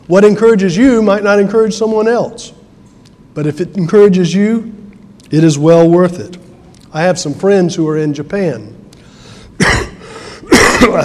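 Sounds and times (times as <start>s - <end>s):
faint steady hum: 0.0s - 11.0s
speech: 0.1s - 2.6s, 3.4s - 8.8s, 10.8s - 11.0s
person clearing throat: 9.6s - 11.0s.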